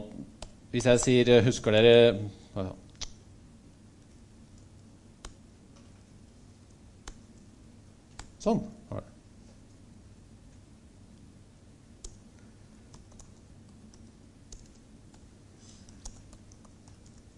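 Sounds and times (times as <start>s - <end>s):
hiss: 0.0s - 17.3s
speech: 0.7s - 2.8s, 8.4s - 9.0s
typing on an English-layout computer keyboard: 12.9s - 15.3s, 15.9s - 17.3s.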